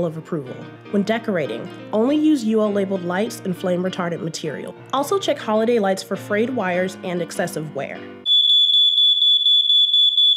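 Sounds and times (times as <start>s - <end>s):
speech: 0.0s - 8.2s
smoke alarm shrill high-pitched electronic beeping: 8.2s - 10.3s.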